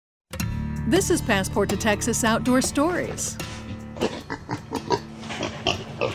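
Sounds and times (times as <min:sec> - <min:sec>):
speech: 0:00.9 - 0:04.2
feral pig grunting and snorting: 0:03.4 - 0:06.1.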